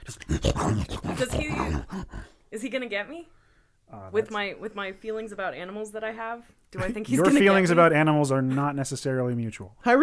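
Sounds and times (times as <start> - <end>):
person imitating the growl of a huge mastiff: 0.0 - 2.4
speech: 0.4 - 10.0.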